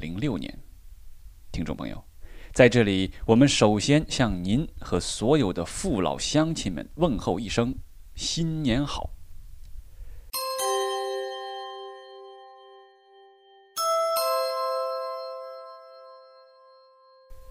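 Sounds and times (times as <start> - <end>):
speech: 0.0 - 0.6, 1.5 - 9.2
large New Year bell ringing: 10.4 - 17.4.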